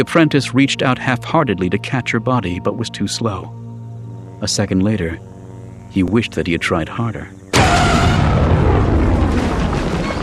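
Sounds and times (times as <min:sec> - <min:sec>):
speech: 0:00.0 - 0:03.6, 0:04.4 - 0:05.3, 0:05.9 - 0:08.1
deep rumbling roar of an explosion: 0:07.5 - 0:10.2.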